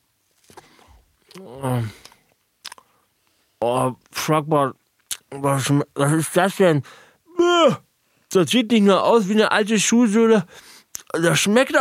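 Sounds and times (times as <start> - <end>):
speech: 1.4 - 2.1, 3.6 - 7.0, 7.6 - 11.7
biting into and chewing a tough food: 2.0 - 2.9.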